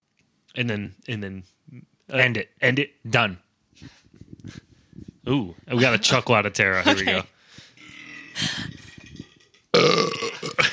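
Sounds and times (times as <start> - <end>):
speech: 0.6 - 4.6, 5.3 - 7.3, 8.4 - 8.7
person burping after drinking canned beer: 7.8 - 10.7.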